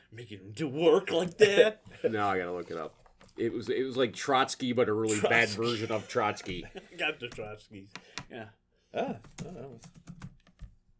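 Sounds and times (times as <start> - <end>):
speech: 0.1 - 10.3
rapid typing on a computer keyboard: 9.2 - 10.8.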